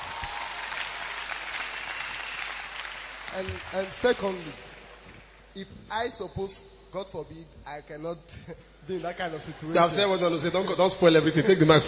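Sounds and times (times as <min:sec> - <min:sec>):
audience applause: 0:00.0 - 0:05.4
speech: 0:03.4 - 0:04.7, 0:05.6 - 0:11.8.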